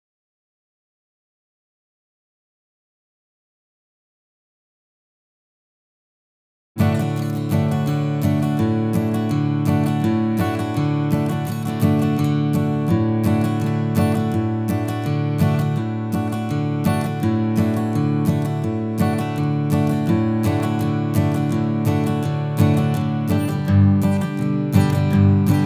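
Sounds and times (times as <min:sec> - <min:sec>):
Martin acoustic guitar: 0:06.8 - 0:25.6.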